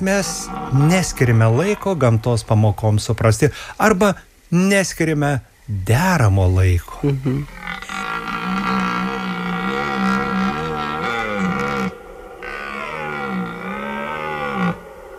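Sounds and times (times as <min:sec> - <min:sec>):
red deer roaring: 0:00.0 - 0:03.1, 0:07.4 - 0:15.1
speech: 0:00.0 - 0:07.8.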